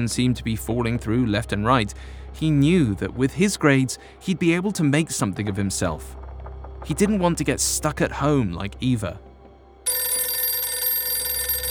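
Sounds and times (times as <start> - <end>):
speech: 0.0 - 6.2, 6.8 - 9.2
telephone ringing at night: 9.9 - 11.6.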